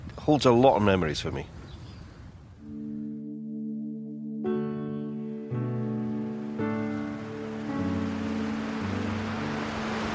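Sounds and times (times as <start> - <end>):
speech: 0.2 - 1.6
loud sustained low tones: 2.6 - 9.4
sea waves breaking at a harbour on an overcast day: 5.7 - 10.1.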